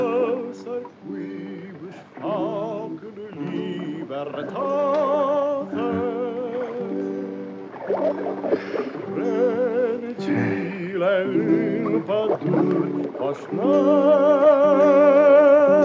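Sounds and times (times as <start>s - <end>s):
boatman singing a slow song in a rowing boat: 0.0s - 7.4s, 8.7s - 15.8s.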